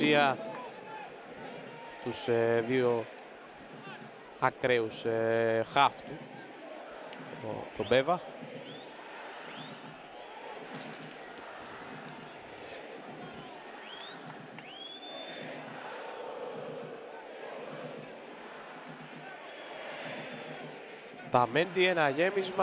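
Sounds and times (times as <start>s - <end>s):
speech: 0.0s - 0.5s, 2.0s - 6.3s, 7.4s - 8.3s, 21.3s - 22.6s
large stadium crowd of home-team fans jeering and booing a visiting player at a football match: 0.0s - 22.6s
shrill whistles from a football stadium crowd: 13.4s - 16.2s.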